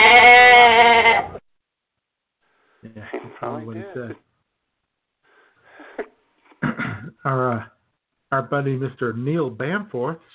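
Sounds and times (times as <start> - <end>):
loud goat bleat with a strained wavering tone: 0.0 - 1.4
speech: 2.9 - 4.3, 7.2 - 7.7, 8.3 - 10.3.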